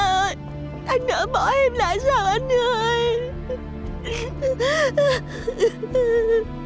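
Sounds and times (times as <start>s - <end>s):
speech: 1.0s - 2.6s
grieving people sobbing and wailing in mourning: 3.1s - 6.6s.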